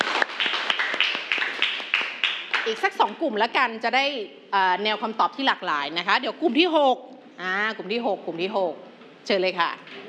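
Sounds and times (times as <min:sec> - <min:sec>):
class clapping for a classmate: 0:00.0 - 0:03.1
speech: 0:02.7 - 0:09.8.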